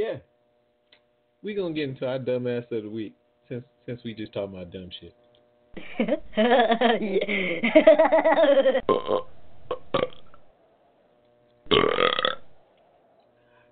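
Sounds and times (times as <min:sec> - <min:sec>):
speech: 0:01.4 - 0:05.2, 0:05.8 - 0:09.4
laughter: 0:05.8 - 0:08.8
long loud drawn-out burp: 0:08.8 - 0:10.4, 0:11.7 - 0:12.5.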